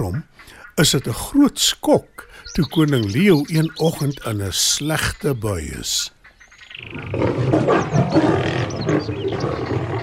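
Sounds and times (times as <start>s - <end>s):
speech: 0.0s - 6.2s, 6.8s - 9.9s
lion roaring loudly with deep rumbling growl: 6.8s - 10.0s.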